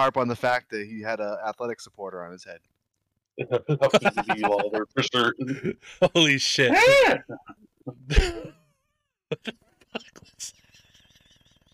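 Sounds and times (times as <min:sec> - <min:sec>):
speech: 0:00.0 - 0:02.7, 0:03.4 - 0:08.6, 0:09.3 - 0:10.6
vocal sounds: 0:03.4 - 0:05.9, 0:06.8 - 0:08.5
laughter: 0:03.4 - 0:08.5, 0:09.3 - 0:11.7
person screeching like an injured cat: 0:06.7 - 0:07.5.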